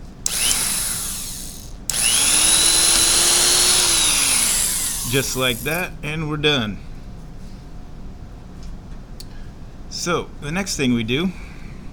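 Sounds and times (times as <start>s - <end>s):
power drill drilling a hole through a cap: 0.0s - 5.8s
speech: 5.1s - 6.9s, 10.0s - 11.4s.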